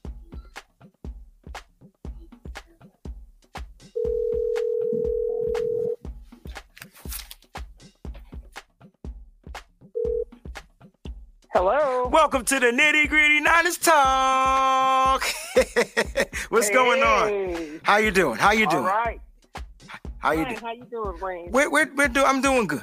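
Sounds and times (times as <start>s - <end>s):
rhythmic beats: 0.0s - 22.8s
telephone ringback tone as a call is placed: 4.0s - 6.0s, 10.0s - 10.3s
speech: 11.6s - 19.2s, 20.2s - 22.8s
laughter: 15.2s - 17.8s.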